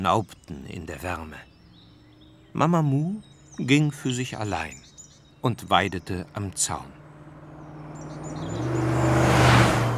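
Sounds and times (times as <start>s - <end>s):
speech: 0.0s - 1.5s, 2.6s - 7.0s
faint birdsong in open countryside: 0.0s - 9.9s
car driving past on a country road: 6.8s - 9.9s.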